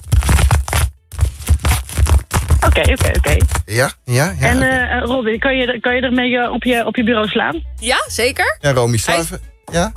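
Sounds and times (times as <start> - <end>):
object squeezed by hand with crunchy crackling: 0.0 - 3.8
speech: 2.8 - 9.9.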